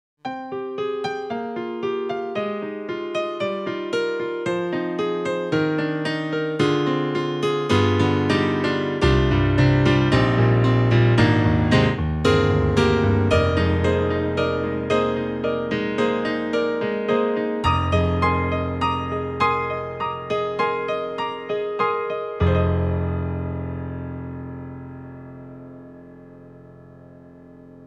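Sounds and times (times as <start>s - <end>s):
Korg X50 stereo piano: 0.2s - 27.8s.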